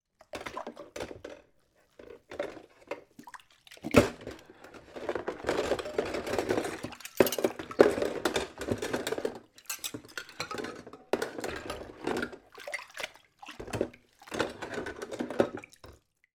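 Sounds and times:
water movements while washing dishes: 0.2s - 16.2s
household cups cutlery and bowl being washed: 0.2s - 16.3s.

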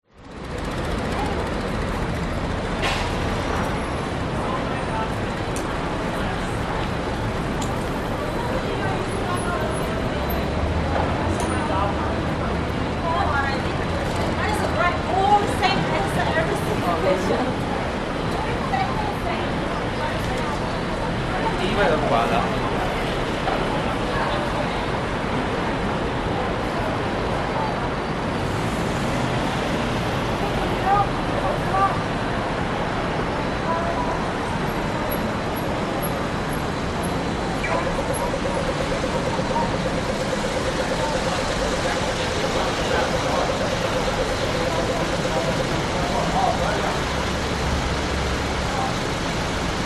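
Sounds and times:
close traffic passing in north CBD Sydney: 0.1s - 49.8s
pedestrian crossing beeps in north CBD Sydney: 35.1s - 46.8s.

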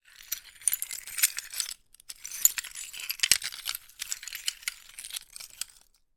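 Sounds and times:
broken tile pieces moving: 0.1s - 5.9s.

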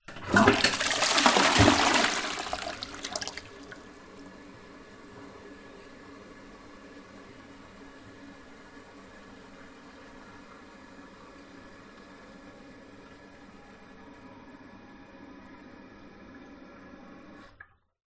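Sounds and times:
household toilet half eco flush: 0.0s - 4.1s.

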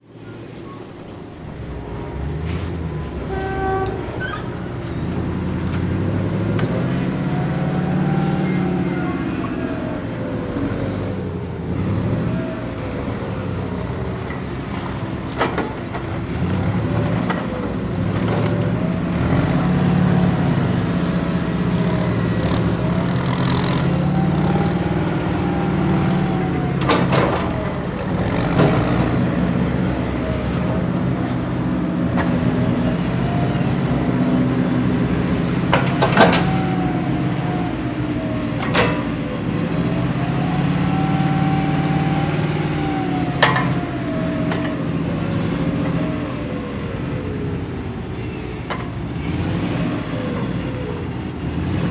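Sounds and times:
industrial hydraulic lift loading logs on a truck: 0.2s - 51.8s.

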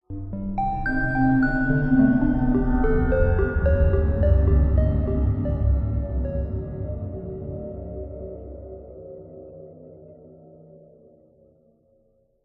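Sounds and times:
ghostly ominous haunted horror musical riff with chime: 0.3s - 9.8s.

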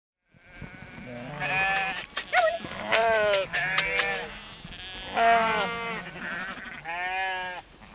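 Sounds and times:
herd of sheep bleating: 0.4s - 7.9s
female farmer calling the sheep: 2.2s - 4.2s.

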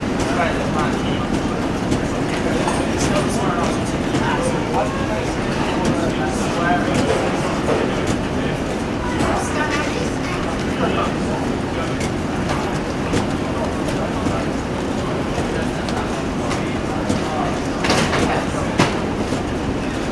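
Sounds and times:
airport baggage reclaim ambience at JFK: 0.0s - 20.1s.

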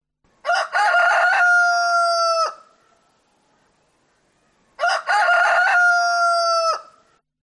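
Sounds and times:
male rooster crowing: 0.4s - 2.8s, 4.8s - 7.1s.

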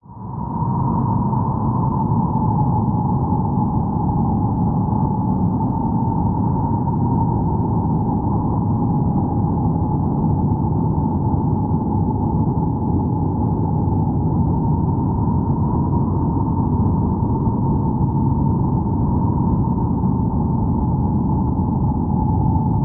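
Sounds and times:
hurricane wind strong constant howling: 0.0s - 22.8s.

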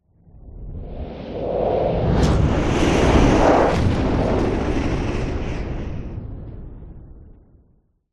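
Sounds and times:
cinematic whoosh with wind rush: 0.5s - 5.3s
aggressive powerful boom: 1.2s - 6.9s.

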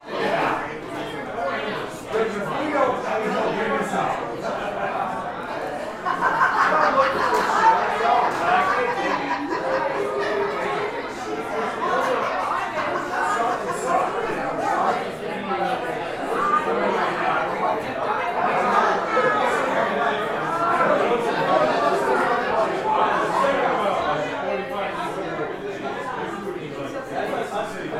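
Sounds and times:
busy bar walla of American voices: 0.0s - 27.9s
laughter: 2.7s - 26.5s.

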